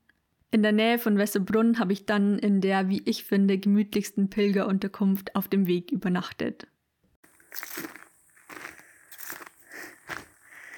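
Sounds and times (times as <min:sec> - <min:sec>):
speech: 0:00.5 - 0:06.7
person walking with crunchy footsteps on gravel in the evening: 0:07.2 - 0:10.7.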